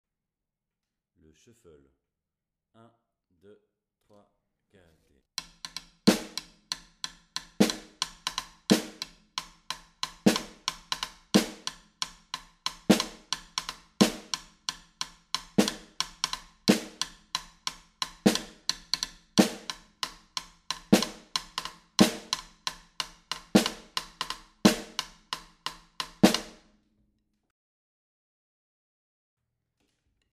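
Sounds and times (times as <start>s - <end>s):
shuffle snare drum in batucada style: 5.4s - 26.7s.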